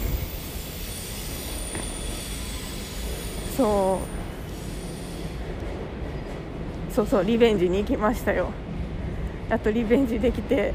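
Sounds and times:
freight train high-pitched wheel squeal: 0.0 - 5.4
freight train running past on rails: 0.0 - 10.7
speech: 3.6 - 4.2, 7.0 - 8.6, 9.5 - 10.7.

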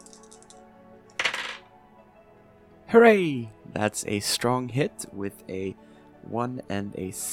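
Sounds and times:
dice tumbling and rattling on a surface: 1.2 - 1.7
speech: 2.9 - 7.3.

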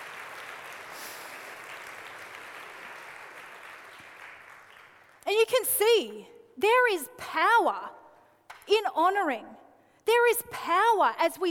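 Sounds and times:
congregation applauding: 0.0 - 5.2
speech: 5.5 - 8.0, 8.7 - 11.5.

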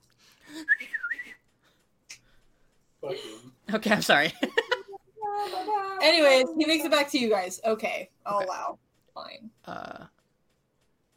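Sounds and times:
person whistling a warbling melodic phrase: 0.5 - 1.5
speech: 3.7 - 4.5, 6.0 - 8.8.

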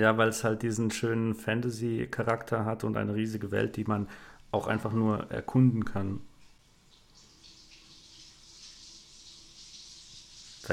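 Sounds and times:
speech: 0.0 - 6.3
water splashing: 6.9 - 10.7.

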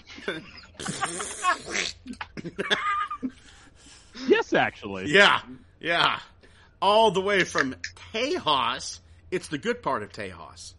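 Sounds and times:
laughter: 0.0 - 4.5
speech: 0.2 - 3.4, 4.2 - 10.7
person imitating a fart: 0.8 - 2.3.

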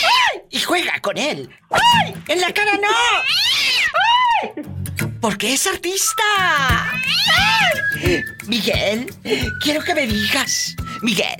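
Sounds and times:
speech: 0.8 - 3.5, 4.4 - 11.3
cat meowing in a drawn-out wavering yowl: 3.1 - 4.6, 6.7 - 7.9.

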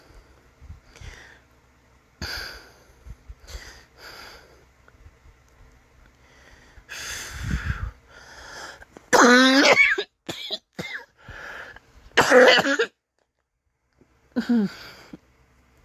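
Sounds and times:
person coughing: 9.2 - 11.1, 12.2 - 12.9.

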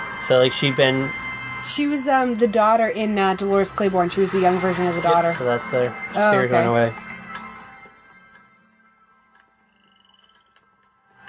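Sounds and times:
faint high-pitched trill: 0.0 - 6.9
speech: 0.3 - 7.0
frog croaking: 9.6 - 10.6.

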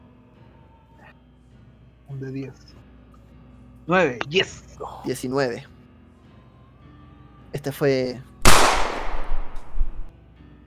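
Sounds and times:
speech: 2.1 - 2.9, 3.9 - 5.7, 7.5 - 8.3
gunshot: 8.4 - 10.1.

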